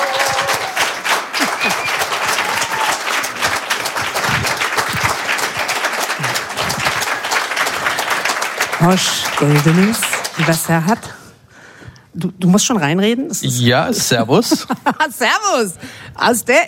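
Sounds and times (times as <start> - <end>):
room full of people applauding: 0.0 - 11.1
speech: 8.8 - 11.2, 12.2 - 16.6.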